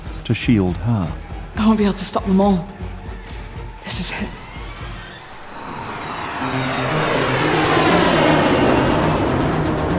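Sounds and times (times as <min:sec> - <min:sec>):
speech: 0:00.3 - 0:02.9, 0:03.9 - 0:04.4
jet plane engine roar slowing down and landing: 0:03.9 - 0:09.9.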